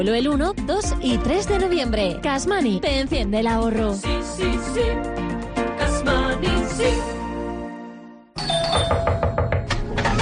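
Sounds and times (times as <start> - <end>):
speech: 0.0 - 5.3, 6.0 - 7.2
doorbell chiming a ding-dong: 8.4 - 9.8.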